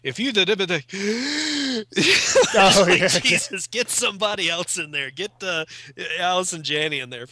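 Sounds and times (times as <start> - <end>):
speech: 0.0 - 7.3
voice mimicking someone gasping for breath: 0.9 - 3.3
laughter: 2.0 - 6.1.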